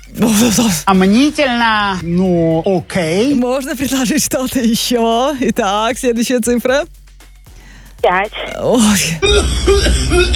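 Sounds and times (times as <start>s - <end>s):
speech: 0.2s - 7.0s, 8.0s - 10.3s
person clearing throat: 9.3s - 10.3s.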